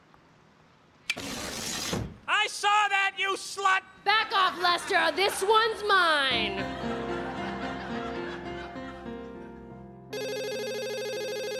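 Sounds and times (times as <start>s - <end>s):
speech: 2.5s - 7.2s
laughter and chuckling: 4.7s - 9.4s
telephone ringing with electronic trill: 10.1s - 11.5s.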